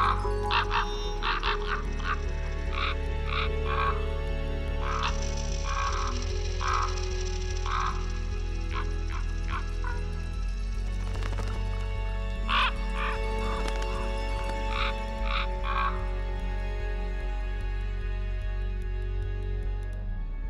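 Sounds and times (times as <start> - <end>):
common ravens croaking: 0.0 - 10.1, 12.5 - 14.0, 14.6 - 16.1
steady low rumble of wind: 0.0 - 20.4.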